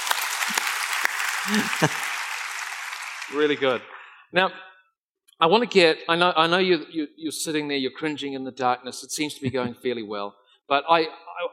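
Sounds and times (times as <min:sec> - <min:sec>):
audience applauding: 0:00.0 - 0:04.0
laughter: 0:01.4 - 0:02.2, 0:09.4 - 0:09.8
speech: 0:01.5 - 0:02.1, 0:03.3 - 0:04.7, 0:05.4 - 0:11.5.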